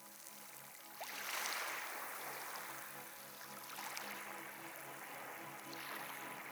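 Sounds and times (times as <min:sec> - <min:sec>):
quiet waves: 0:00.0 - 0:06.5.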